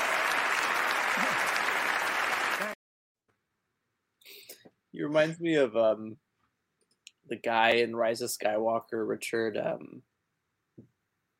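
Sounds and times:
man clapping enthusiastically: 0:00.0 - 0:02.8
speech: 0:05.0 - 0:06.2, 0:07.3 - 0:10.1.

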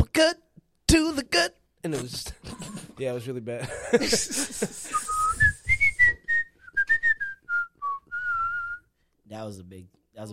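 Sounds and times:
speech: 0:00.2 - 0:05.2, 0:09.3 - 0:10.3
laughter: 0:03.6 - 0:05.3
person whistling a short melodic tune: 0:04.9 - 0:08.9.

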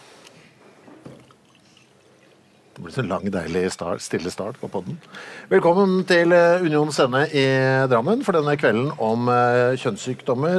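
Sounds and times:
quiet room noise: 0:00.0 - 0:10.5
water poured into a glass: 0:01.2 - 0:02.6
speech: 0:02.8 - 0:10.5.

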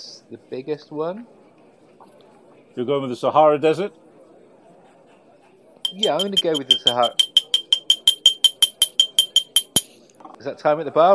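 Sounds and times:
speech: 0:00.0 - 0:01.4, 0:02.8 - 0:04.0, 0:05.9 - 0:07.2, 0:10.4 - 0:11.1
drinking glass full of drink tapped like a bell: 0:05.9 - 0:10.0.

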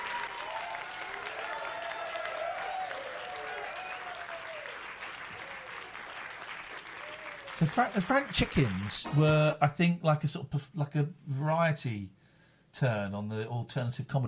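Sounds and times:
tepid applause from a crowd at an alternative comedy show: 0:00.0 - 0:09.2
speech: 0:07.6 - 0:14.2.

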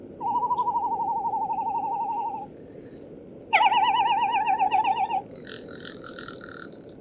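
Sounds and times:
faint breathy background: 0:00.0 - 0:06.9
frigatebird warbling trill calls: 0:00.0 - 0:06.9.

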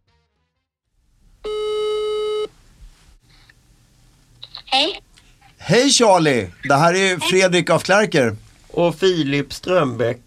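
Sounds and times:
steady buzzy electronic call-progress tone on a telephone line: 0:01.4 - 0:02.5
speech: 0:05.7 - 0:10.2.

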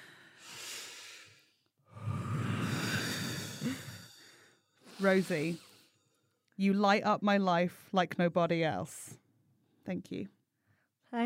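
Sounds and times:
people breathing in and out together: 0:00.0 - 0:06.5
speech: 0:05.0 - 0:05.7, 0:06.6 - 0:09.2, 0:09.8 - 0:10.4.

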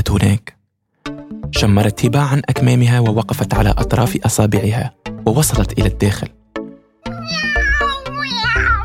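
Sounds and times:
speech: 0:00.1 - 0:00.6, 0:01.5 - 0:06.4
cat meowing with a strained wail: 0:07.0 - 0:08.8.

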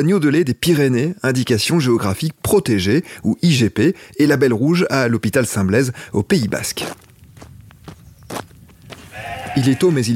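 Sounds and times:
speech: 0:00.0 - 0:07.1, 0:09.6 - 0:10.1
soft footsteps outdoors on a sheep cheese and lamb farm: 0:06.4 - 0:09.7
low breezy rumble of wind over cut grass on a hot morning: 0:06.5 - 0:09.3
farm animal short nasal bleat on a sheep cheese and lamb farm: 0:09.0 - 0:10.1.

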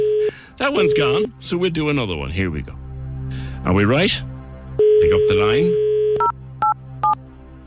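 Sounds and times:
touch-tone beeps of a phone number being keyed in: 0:00.0 - 0:01.3, 0:04.8 - 0:07.2
speech: 0:00.6 - 0:04.3, 0:05.0 - 0:05.8.

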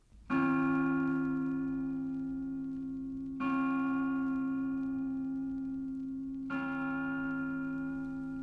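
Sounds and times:
single Angelus church bell tolling at noon: 0:00.3 - 0:08.4.

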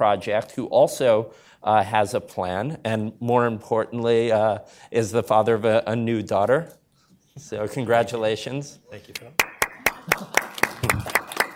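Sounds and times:
speech: 0:00.0 - 0:06.8, 0:07.4 - 0:09.5, 0:10.1 - 0:11.1
audience applause: 0:09.4 - 0:11.5.

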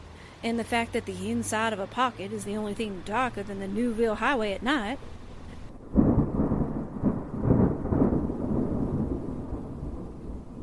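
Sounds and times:
speech: 0:00.4 - 0:05.2
deep rolling rumble: 0:02.4 - 0:10.6
rain falling on a moving car at night: 0:02.5 - 0:10.6.

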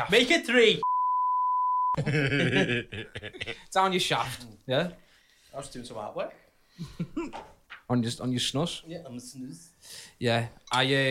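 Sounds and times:
speech: 0:00.0 - 0:00.9, 0:02.0 - 0:11.0
steady pure censor bleep tone: 0:00.8 - 0:02.0
laughter: 0:02.0 - 0:03.7.

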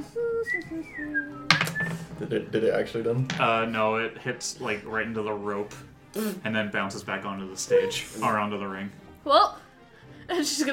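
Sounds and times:
person whistling a short wandering tune: 0:00.0 - 0:02.1
speech: 0:00.4 - 0:09.6, 0:10.3 - 0:10.7.

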